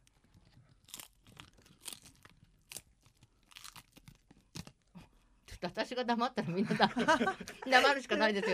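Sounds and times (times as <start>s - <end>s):
crunching seasoned dried nori seaweed being chewed: 0.0s - 5.0s
speech: 5.6s - 8.5s
laughter: 6.4s - 8.5s.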